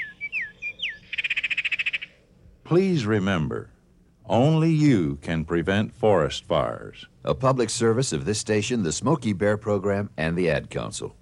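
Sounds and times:
northern oriole whistling and chattering: 0.0s - 2.1s
speech: 2.7s - 11.2s.

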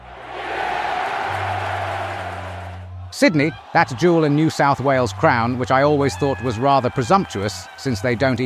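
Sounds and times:
large crowd roaring and cheering: 0.0s - 8.4s
speech: 3.2s - 8.4s.

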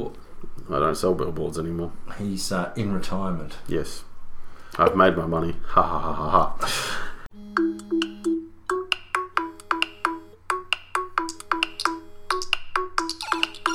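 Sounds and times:
speech: 0.0s - 4.1s, 4.8s - 7.0s
mobile phone ringing: 7.4s - 13.7s.

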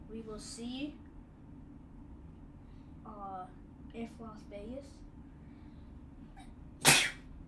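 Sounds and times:
speech: 0.1s - 1.0s, 3.1s - 5.0s
single sharp sneeze: 6.4s - 7.3s.

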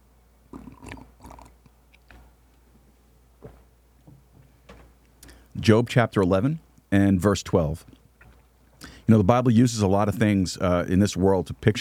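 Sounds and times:
person gulping: 0.5s - 2.2s
person sipping a drink: 0.5s - 2.2s
speech: 5.6s - 8.0s, 9.1s - 11.8s.

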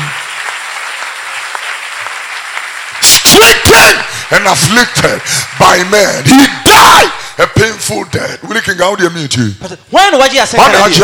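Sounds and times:
congregation clapping hands at a church service: 0.0s - 7.0s
speech: 3.8s - 11.0s.

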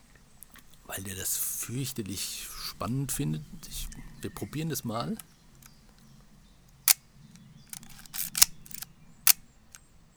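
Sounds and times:
speech: 1.0s - 5.3s
film camera shutter firing: 7.7s - 9.4s
ratcheting whir of film camera advance lever being wound: 7.7s - 9.4s.

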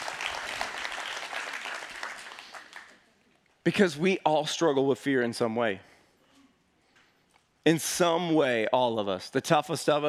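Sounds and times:
room full of people applauding: 0.0s - 3.0s
speech: 3.6s - 5.9s, 7.6s - 10.0s.

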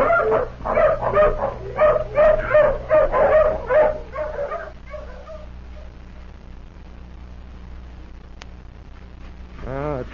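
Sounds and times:
tracking hound barking and yipping at the foot of a cliff: 0.0s - 5.9s
low steady hum: 0.0s - 10.1s.

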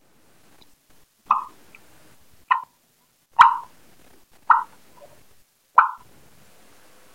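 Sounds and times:
turkey clucks made with a turkey call: 1.3s - 1.8s, 2.5s - 2.7s, 3.4s - 3.8s, 4.5s - 5.2s, 5.8s - 6.1s.

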